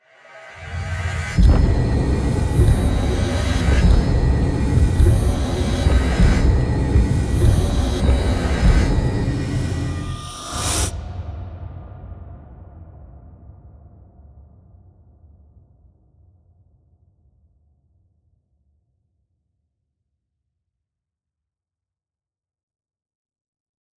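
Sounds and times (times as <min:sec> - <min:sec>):
dark industrial rhythm: 0:00.8 - 0:10.9.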